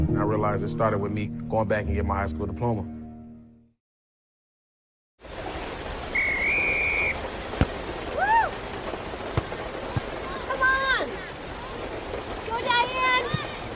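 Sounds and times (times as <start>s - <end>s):
speech: 0.2s - 2.9s
steady rain: 5.2s - 13.7s
short whistle blasts: 6.1s - 7.3s.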